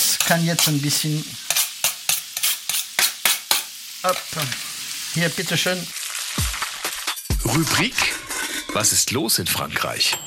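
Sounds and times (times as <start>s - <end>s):
onions and smoked bacon sizzling in a pan: 0.0s - 7.4s
speech: 0.3s - 1.6s, 4.0s - 6.0s, 7.4s - 8.2s, 8.8s - 10.2s.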